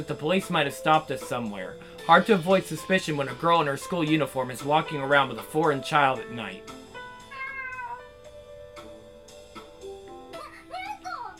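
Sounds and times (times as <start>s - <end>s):
speech: 0.0s - 6.8s
cat meowing: 7.2s - 8.2s.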